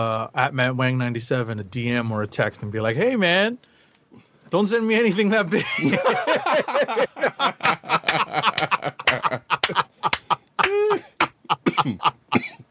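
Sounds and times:
speech: 0:00.0 - 0:08.6
laughter: 0:05.5 - 0:12.5
person coughing harshly: 0:10.6 - 0:12.6.

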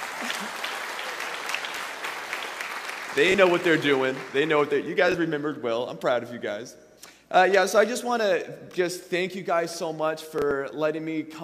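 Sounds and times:
audience applause: 0:00.0 - 0:04.8
speech: 0:03.2 - 0:11.4.

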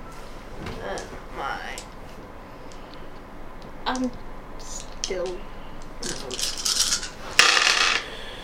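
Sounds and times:
speech: 0:03.9 - 0:04.3, 0:05.1 - 0:06.6
dice being gathered and rolled: 0:06.0 - 0:08.1.

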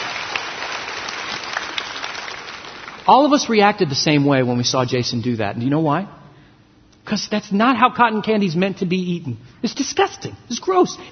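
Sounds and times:
audience applause: 0:00.0 - 0:03.3
speech: 0:03.1 - 0:06.2, 0:07.1 - 0:11.1.

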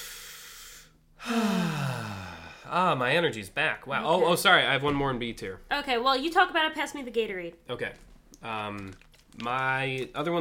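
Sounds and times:
deep breath with exhaling sigh: 0:00.0 - 0:02.8
speech: 0:02.7 - 0:10.4.

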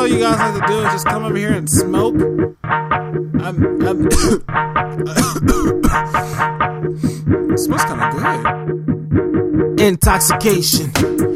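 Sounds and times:
speech: 0:00.1 - 0:09.0, 0:09.8 - 0:11.3
person coughing: 0:04.0 - 0:06.6.

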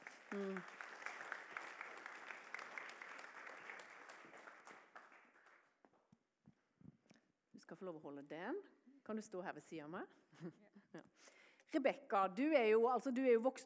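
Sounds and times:
audience applause: 0:00.0 - 0:05.7
speech: 0:00.3 - 0:00.8, 0:07.7 - 0:13.6.

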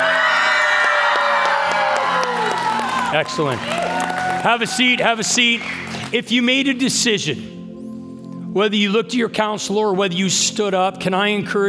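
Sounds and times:
large church audience cheering and roaring: 0:00.0 - 0:06.0
speech: 0:03.1 - 0:07.6, 0:08.5 - 0:11.6.

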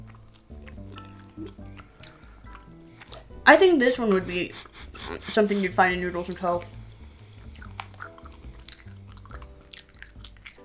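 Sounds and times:
low steady tonal background: 0:00.0 - 0:10.6
wet chewing of food with soft crunches: 0:00.0 - 0:10.6
speech: 0:03.5 - 0:04.7, 0:05.3 - 0:06.8.

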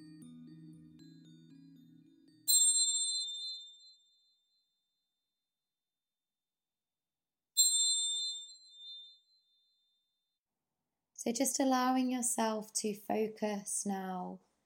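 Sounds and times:
meditation chimes ringing: 0:00.0 - 0:04.8, 0:07.6 - 0:09.8
speech: 0:11.2 - 0:14.5.

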